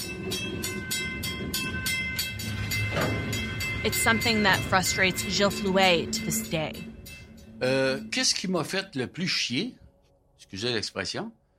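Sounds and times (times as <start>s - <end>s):
train rolling along the rails through Lac Megantic: 0.3s - 6.7s
speech: 3.8s - 6.9s, 7.6s - 9.8s, 10.5s - 11.5s.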